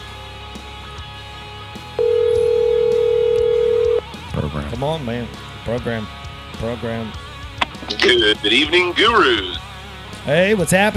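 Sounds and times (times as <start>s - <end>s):
phone ringing tone: 2.0s - 4.6s
hum: 2.0s - 8.0s
speech: 4.8s - 7.2s, 7.8s - 9.6s, 10.3s - 10.9s.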